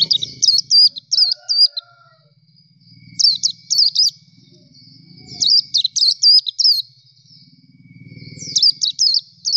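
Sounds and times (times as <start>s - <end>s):
nightingale training song for kept songbirds: 0.0s - 9.5s.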